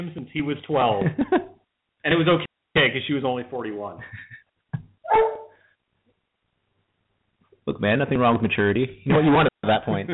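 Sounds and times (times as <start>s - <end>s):
speech: 0.0s - 4.4s, 7.7s - 10.1s
dog whining: 5.1s - 5.6s.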